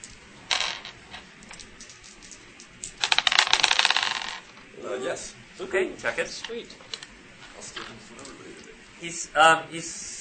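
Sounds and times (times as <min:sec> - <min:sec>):
dice clattering across a hard tabletop: 0:00.0 - 0:04.6
speech: 0:05.0 - 0:07.0, 0:07.6 - 0:10.1.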